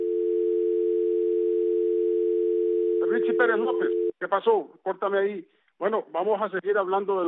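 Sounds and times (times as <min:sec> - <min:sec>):
telephone dial tone after a dropped call: 0:00.0 - 0:04.1
speech: 0:03.1 - 0:07.2.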